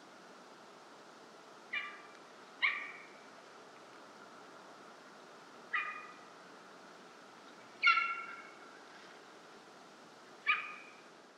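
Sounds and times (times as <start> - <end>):
faint hiss: 0.0 - 11.3
golden eagle calling: 1.7 - 3.2, 5.7 - 6.2, 7.8 - 8.6, 10.4 - 11.0.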